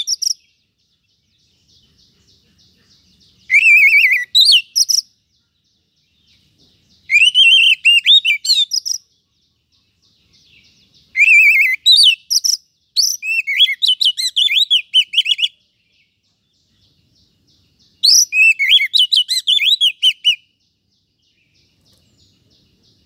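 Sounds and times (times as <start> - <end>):
Oriental magpie-robin singing rich varied whistles and harsh chattering notes: 0.0 - 0.5, 1.9 - 5.2, 7.0 - 9.1, 10.6 - 15.6, 17.8 - 20.6.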